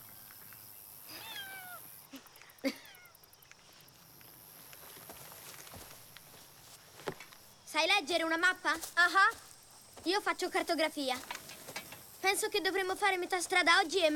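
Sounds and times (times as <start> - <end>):
faint footsteps: 0.0 - 14.1
steady hiss: 0.0 - 14.1
cat meowing: 1.1 - 1.8, 2.8 - 3.1
speech: 7.8 - 11.4, 12.2 - 14.1.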